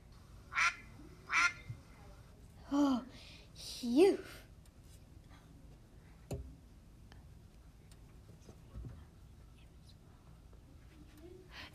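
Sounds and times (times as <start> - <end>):
duck quacking: 0.5 - 1.6
speech: 2.7 - 4.4.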